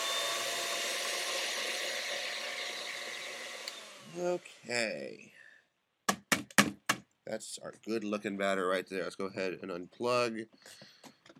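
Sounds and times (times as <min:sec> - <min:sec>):
electric mixer with whisks running to clean off batter: 0:00.0 - 0:04.7
speech: 0:04.2 - 0:05.4, 0:07.3 - 0:11.2.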